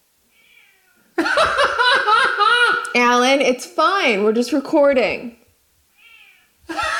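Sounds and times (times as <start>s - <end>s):
cat meowing behind a shut bathroom door: 0.4s - 1.0s, 6.0s - 6.5s
laughter: 1.2s - 2.9s, 6.7s - 6.9s
speech: 3.0s - 5.4s.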